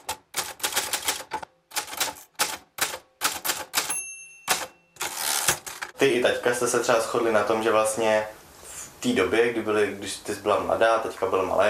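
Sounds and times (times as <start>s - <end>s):
old typewriter typing: 0.0s - 6.0s
old typewriter bell ringing: 3.4s - 5.6s
speech: 6.0s - 8.4s, 9.0s - 11.6s.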